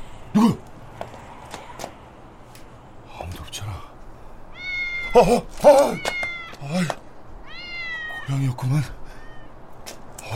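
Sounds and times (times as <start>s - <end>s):
speech: 0.4s - 0.6s, 5.2s - 6.1s, 6.7s - 7.0s, 8.3s - 9.0s
cat meowing: 4.5s - 6.8s, 7.4s - 8.4s, 9.1s - 9.6s.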